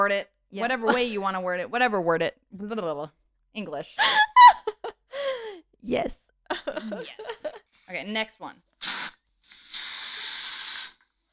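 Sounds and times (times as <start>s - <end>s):
speech: 0.0s - 4.3s, 5.8s - 8.7s
laughter: 6.5s - 7.6s
aerosol spray can spraying: 8.8s - 11.1s.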